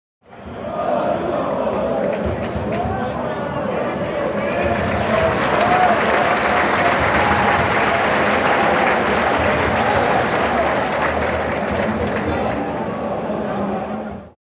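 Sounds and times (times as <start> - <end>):
stadium fans clapping: 0.4 - 13.7.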